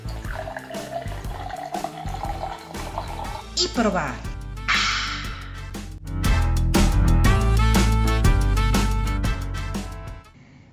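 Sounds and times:
beer pouring into a glass: 0.0 - 3.5
music: 0.0 - 10.4
speech: 3.6 - 4.3.

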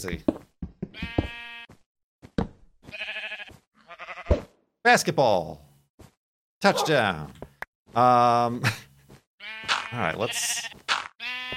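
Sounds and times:
speech: 0.0 - 0.4, 4.9 - 5.7, 6.6 - 8.8, 9.9 - 10.8
sheep bleating: 1.0 - 1.8, 2.9 - 4.3, 9.4 - 11.5.

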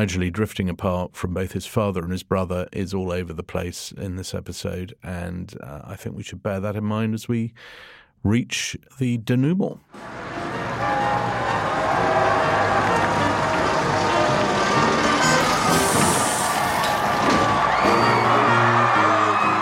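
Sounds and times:
speech: 0.0 - 10.4
large outdoor crowd cheering and whooping along the streets: 10.0 - 19.5
scattered shouts: 10.0 - 19.5.

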